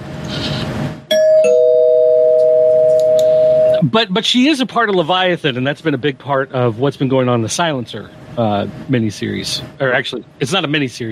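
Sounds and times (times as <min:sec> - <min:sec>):
two-tone descending doorbell chime: 0:01.1 - 0:03.8
speech: 0:03.9 - 0:11.1.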